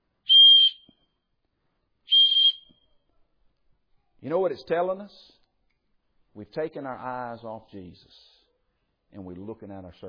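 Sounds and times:
short shrill whistle blasts: 0.2 - 1.1, 2.1 - 3.0
speech: 4.2 - 5.4, 6.4 - 8.4, 9.1 - 10.0.

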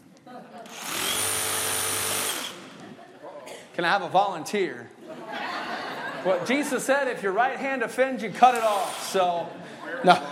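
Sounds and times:
laughter: 0.2 - 0.8, 5.0 - 6.8, 9.3 - 10.2
power drill whirring: 0.7 - 2.8, 8.6 - 9.2
speech: 3.8 - 5.4, 6.2 - 10.2.

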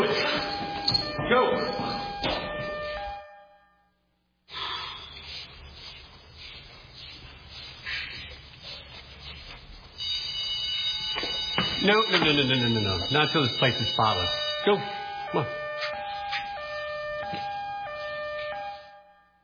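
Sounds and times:
alarm with harsh harmonic tone: 0.0 - 4.0, 10.0 - 19.4
high tone: 0.0 - 4.0, 10.0 - 19.4
speech: 1.3 - 1.8, 11.9 - 16.0.

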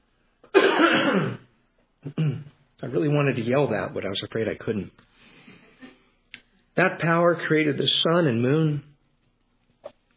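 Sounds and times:
person coughing with harsh rasping throat-clearing: 0.5 - 1.5, 2.1 - 2.6
speech: 2.0 - 5.1, 6.8 - 8.9.

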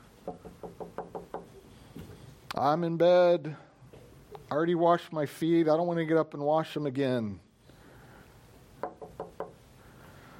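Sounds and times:
knocking on a door: 0.2 - 1.5, 8.8 - 9.6
speech: 2.6 - 3.6, 4.5 - 7.4.

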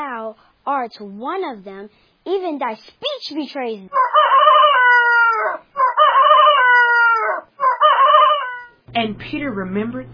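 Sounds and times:
speech: 0.0 - 4.4, 9.0 - 10.1
rooster crowing: 3.9 - 8.8.

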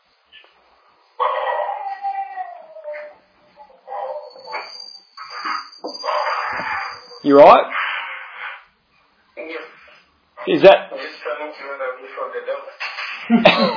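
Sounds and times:
pet dog howling: 1.2 - 7.6
speech: 7.2 - 7.8, 10.5 - 11.2, 13.3 - 13.7
laughter: 13.3 - 13.7.

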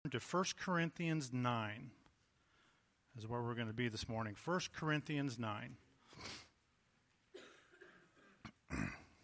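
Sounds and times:
speech: 0.1 - 2.0, 3.2 - 6.5
person clearing throat: 7.3 - 9.2.

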